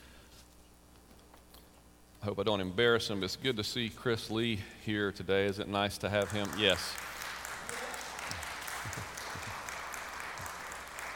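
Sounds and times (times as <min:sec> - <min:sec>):
speech: 0:02.2 - 0:07.1
audience clapping: 0:06.0 - 0:11.1.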